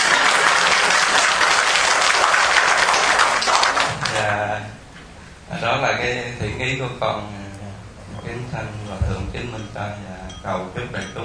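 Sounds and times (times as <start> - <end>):
dense applause from a large crowd: 0.0 - 4.4
speech: 5.7 - 7.4, 8.3 - 11.2.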